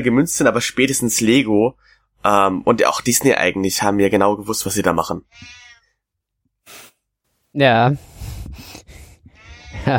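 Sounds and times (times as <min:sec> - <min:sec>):
speech: 0:00.0 - 0:05.6, 0:07.6 - 0:08.7
cat meowing: 0:05.2 - 0:06.0, 0:09.2 - 0:09.9
laughter: 0:09.7 - 0:09.9.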